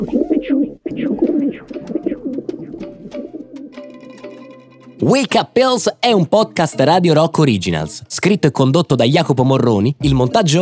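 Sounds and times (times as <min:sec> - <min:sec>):
pigeons cooing: 0:00.0 - 0:03.8
speech: 0:05.0 - 0:10.6.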